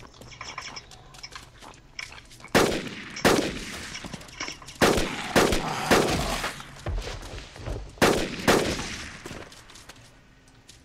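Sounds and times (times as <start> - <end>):
AR-15 rifle gunshots in a zombie video game: 2.5 - 3.9, 4.8 - 6.4, 8.0 - 9.2.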